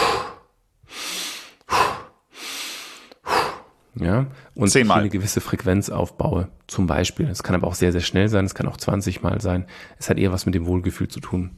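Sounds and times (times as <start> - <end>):
hyperventilation breathing in through the nose and out through the mouth: 0.0 - 4.6
speech: 4.0 - 11.5.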